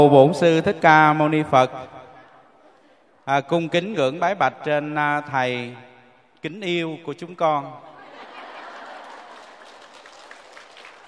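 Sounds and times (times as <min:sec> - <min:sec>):
speech: 0:00.0 - 0:01.9, 0:03.2 - 0:07.9
laughter: 0:07.8 - 0:11.0
applause from a sizable crowd: 0:08.5 - 0:11.0.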